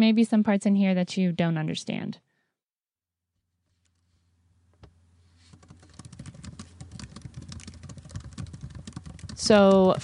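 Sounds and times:
speech: 0.0s - 2.3s, 9.4s - 10.0s
typing on a computer keyboard: 5.5s - 10.0s.

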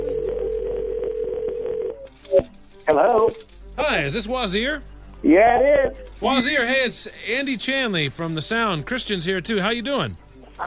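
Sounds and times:
telephone line tone: 0.0s - 2.1s
speech: 2.4s - 10.6s.

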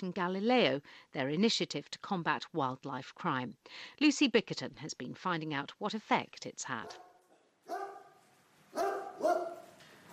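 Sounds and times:
speech: 0.0s - 7.1s
police dogs barking in kennels at a rural crime police headquarters near Lincoln: 6.8s - 9.8s.

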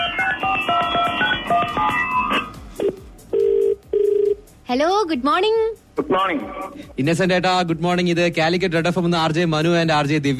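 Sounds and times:
brief telephone beeps: 0.0s - 4.4s
quick electronic telephone melody on an outgoing call: 0.0s - 4.4s
speech: 4.7s - 10.3s.

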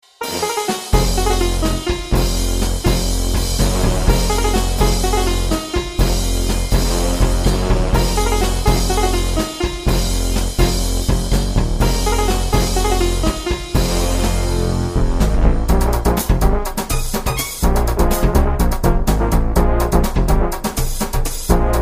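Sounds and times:
virtual sitar in latin funk Indian fusion: 0.2s - 10.9s, 11.8s - 15.4s
virtual brass in latin funk Indian fusion: 0.2s - 20.8s, 21.4s - 21.8s.

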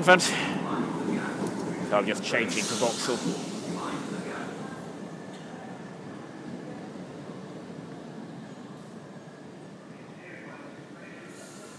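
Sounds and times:
speech: 0.0s - 0.6s, 1.9s - 3.5s
indistinct voices: 0.0s - 6.4s
train rumbling and hissing at a station platform: 0.0s - 11.7s.

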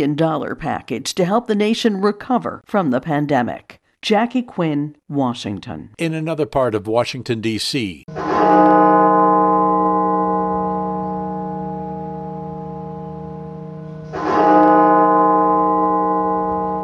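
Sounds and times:
speech: 0.0s - 9.0s
deep resonant cathedral bell tolling: 8.1s - 16.8s.

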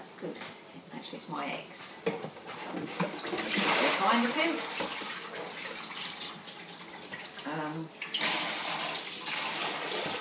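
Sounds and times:
speech: 0.1s - 5.0s, 7.5s - 8.0s
tap water running for washing up: 3.0s - 10.2s.

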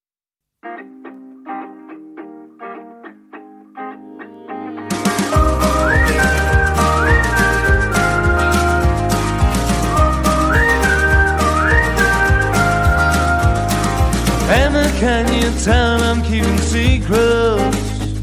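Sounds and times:
bright whistled melody: 4.9s - 14.7s
pop track with a thumping beat: 4.9s - 18.2s.

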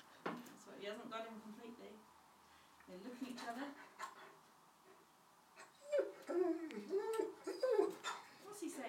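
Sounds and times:
speech: 0.8s - 2.1s, 2.9s - 4.4s, 6.3s - 7.4s
dog whining: 5.6s - 8.4s.

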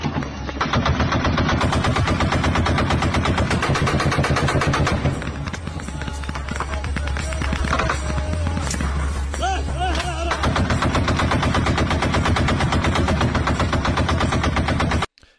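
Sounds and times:
machine-gun fire of tracer rounds over a city from a video: 0.1s - 8.9s, 10.1s - 15.1s.

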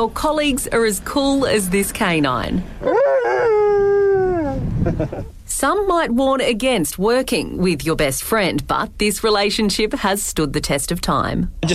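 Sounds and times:
speech: 0.0s - 3.3s, 4.8s - 11.7s
dog howling: 2.8s - 4.6s.

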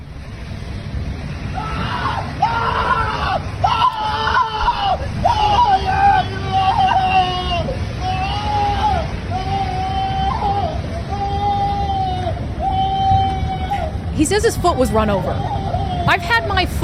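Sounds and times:
steady rumble of crowd noise: 0.0s - 16.8s
man screaming in pain: 1.6s - 14.0s
speech: 14.4s - 16.8s.

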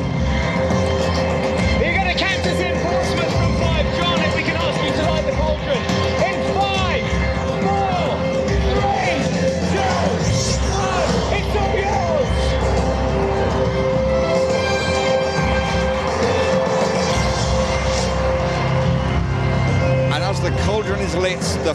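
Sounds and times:
large outdoor crowd cheering at a torch relay celebration in Portsmouth: 0.0s - 21.7s
shouts and whoops from the crowd: 6.3s - 13.0s.

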